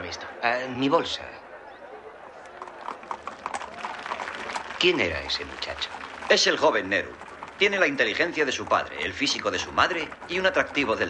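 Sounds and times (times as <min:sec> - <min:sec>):
speech: 0:00.1 - 0:01.4, 0:04.8 - 0:11.0
horse hooves clip-clopping at a trot: 0:02.3 - 0:11.0
horse-drawn carriage rolling: 0:02.5 - 0:11.0.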